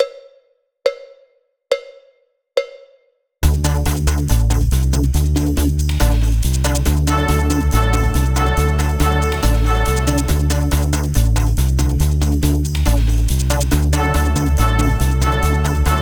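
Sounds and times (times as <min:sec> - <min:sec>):
rhythmic accents warm-up exercise: 0:03.5 - 0:16.0.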